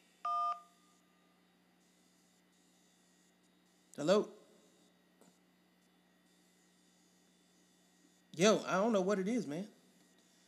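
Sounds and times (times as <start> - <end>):
telephone keypad tone for the digit one, pressed to accept an incoming call: 0.3 - 0.7
speech: 4.0 - 4.4, 8.4 - 9.8.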